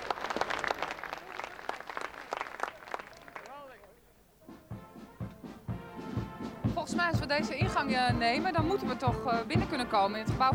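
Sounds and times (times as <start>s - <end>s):
audience applause: 0.0s - 4.0s
speech: 6.9s - 10.5s.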